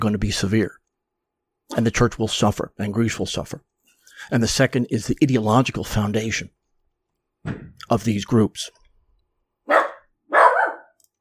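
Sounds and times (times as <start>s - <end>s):
speech: 0.0s - 0.8s, 1.7s - 6.6s, 7.4s - 8.8s
dog barking at fireworks outside: 9.7s - 11.0s.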